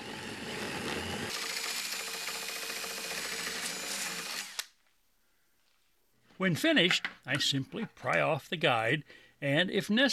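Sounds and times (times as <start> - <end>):
power drill with hole saw drilling through template: 0.0 - 4.8
speech: 6.4 - 10.1.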